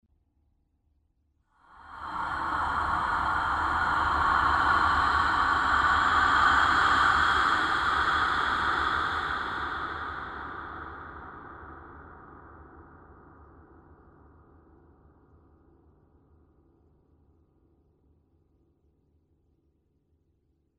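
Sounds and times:
close breathing: 1.5s - 12.0s.

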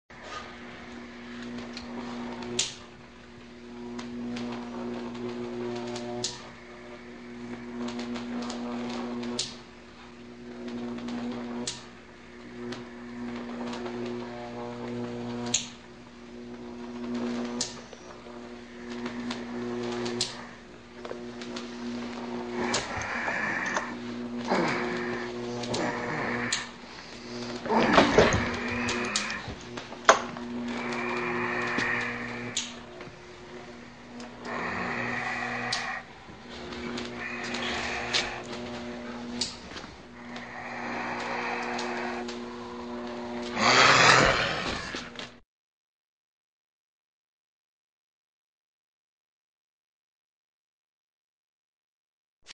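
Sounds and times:
machine sound: 0.2s - 45.3s
monster breathing: 22.5s - 29.7s, 30.7s - 42.8s, 43.5s - 45.2s.

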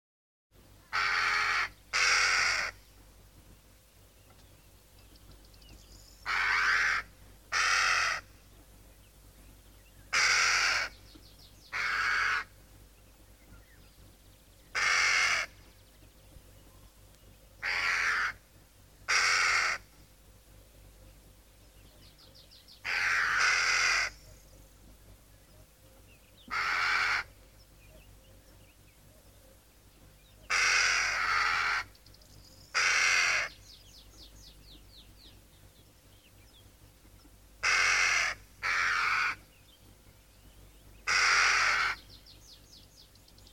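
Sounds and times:
two crows cawing: 0.9s - 2.8s, 6.2s - 8.3s, 10.1s - 11.0s, 11.7s - 12.6s, 14.7s - 15.6s, 17.6s - 18.5s, 19.1s - 20.0s, 22.8s - 24.2s, 26.5s - 27.4s, 30.5s - 32.0s, 32.7s - 33.6s, 37.6s - 39.5s, 41.0s - 42.1s.

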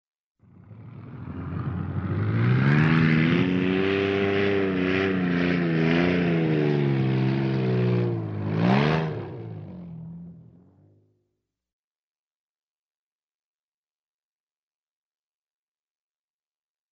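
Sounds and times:
vehicle driving off-road: 0.4s - 11.0s.

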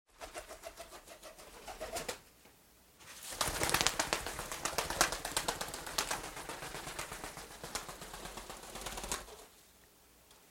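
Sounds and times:
pigeons flying in a large cage: 0.2s - 2.2s, 3.2s - 9.5s.

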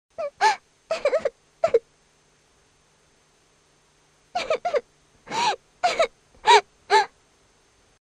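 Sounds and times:
little girl crying: 0.2s - 1.8s, 4.4s - 7.1s.

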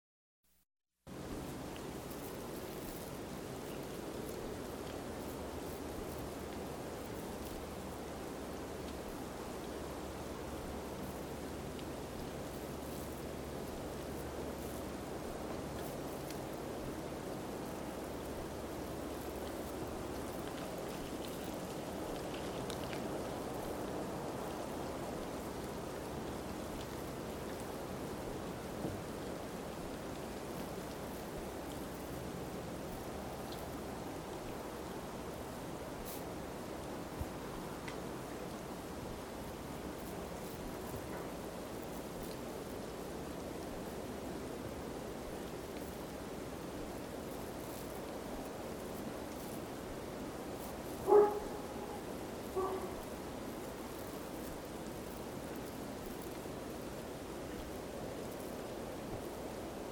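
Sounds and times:
snowfall with wind: 1.1s - 59.9s
dog: 51.0s - 52.0s, 52.6s - 53.0s.

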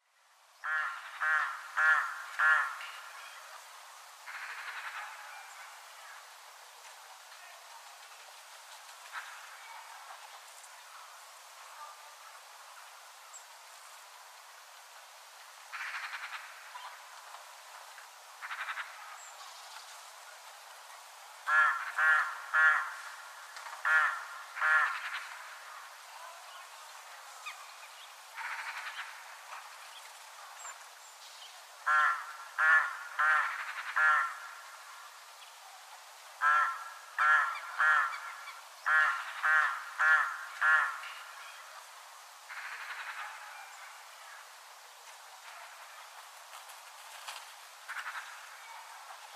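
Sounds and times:
crow cawing in a village in winter: 0.6s - 3.0s, 4.3s - 5.3s, 15.7s - 16.7s, 18.4s - 19.0s, 21.5s - 25.7s, 28.4s - 29.2s, 31.8s - 34.8s, 36.4s - 41.3s, 42.5s - 43.5s.

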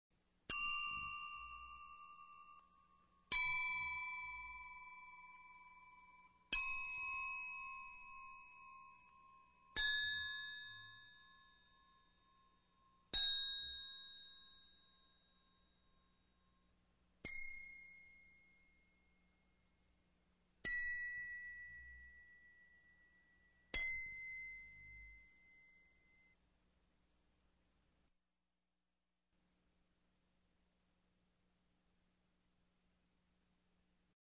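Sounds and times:
single bells in different keys: 0.5s - 16.6s, 17.3s - 19.5s, 20.7s - 26.4s.

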